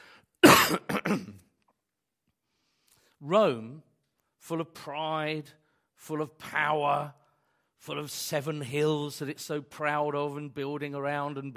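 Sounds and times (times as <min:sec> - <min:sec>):
person with a tickly cough coughing harshly: 0:00.4 - 0:01.5
speech: 0:00.7 - 0:01.4, 0:03.2 - 0:07.2, 0:07.8 - 0:11.5.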